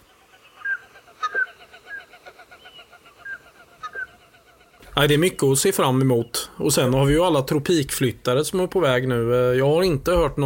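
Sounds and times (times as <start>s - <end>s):
common scoter flight calls: 0.0s - 6.4s
speech: 5.0s - 10.4s.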